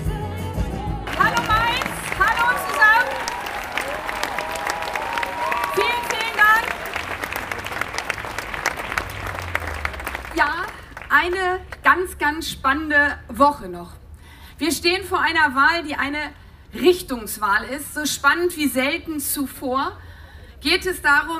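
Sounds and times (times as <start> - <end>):
live band playing at an election rally: 0.0 - 3.5
crowd cheering and whooping at an election rally: 0.9 - 10.2
large audience applauding at an election rally: 1.0 - 11.2
speech: 12.3 - 14.0, 14.6 - 20.0, 20.6 - 21.3.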